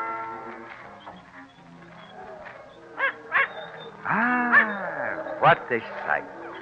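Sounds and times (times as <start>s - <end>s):
small dog yapping: 2.4s - 4.8s
speech: 5.7s - 6.4s.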